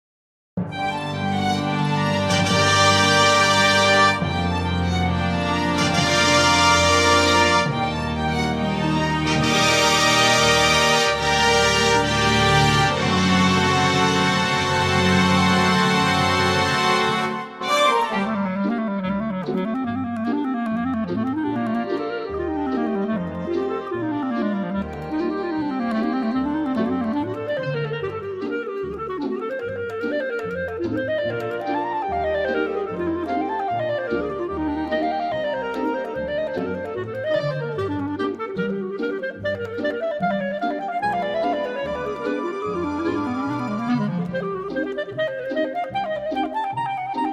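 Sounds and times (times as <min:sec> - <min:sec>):
classical music with clarinet: 0:00.6 - 0:47.3.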